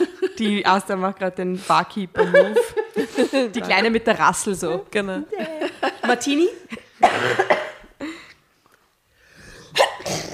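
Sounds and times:
speech: 0.4s - 7.5s
laughter: 2.2s - 4.2s, 5.3s - 7.0s
person coughing: 7.0s - 7.9s, 9.7s - 10.3s
person hiccuping: 9.8s - 10.3s.

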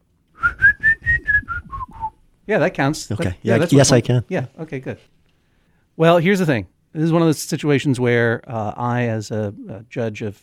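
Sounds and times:
person whistling short notes at a steady pitch: 0.4s - 2.2s
speech: 2.5s - 5.2s, 6.0s - 10.4s.

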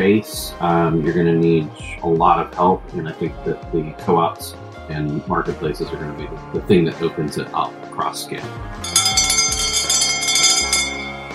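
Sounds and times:
speech: 0.2s - 9.0s
bell ringing with bright shimmering tones: 8.8s - 11.3s.

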